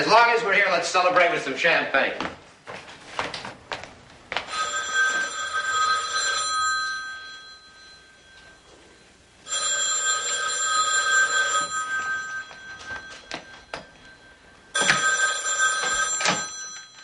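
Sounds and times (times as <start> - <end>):
speech: 0.0 - 2.4
telephone ringing: 4.5 - 17.0.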